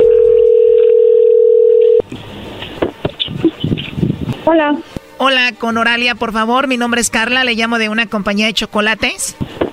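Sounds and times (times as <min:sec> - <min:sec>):
loud steady telephone dial tone: 0:00.0 - 0:02.0
speech: 0:04.5 - 0:09.6.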